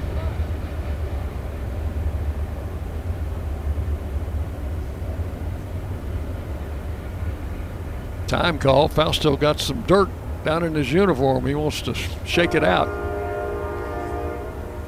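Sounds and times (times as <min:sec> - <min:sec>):
train rolling past: 0:00.0 - 0:14.8
speech: 0:08.3 - 0:13.1.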